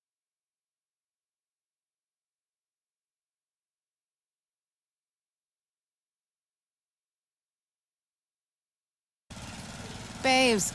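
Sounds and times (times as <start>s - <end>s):
lawn mower engine starting and running: 9.3s - 10.7s
speech: 10.2s - 10.7s.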